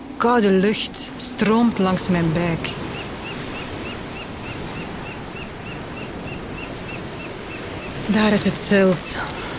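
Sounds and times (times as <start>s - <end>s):
gusting wind noise across the microphone: 0.0s - 9.5s
sea surf with waves breaking: 0.0s - 9.5s
speech: 0.2s - 2.9s, 8.1s - 9.5s
faint chirping: 2.8s - 8.3s.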